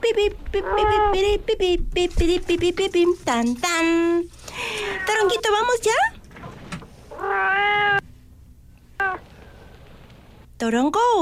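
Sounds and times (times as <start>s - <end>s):
speech: 0.1s - 6.2s, 10.6s - 11.1s
kitten meowing: 4.8s - 5.4s, 7.1s - 8.0s, 9.0s - 9.2s.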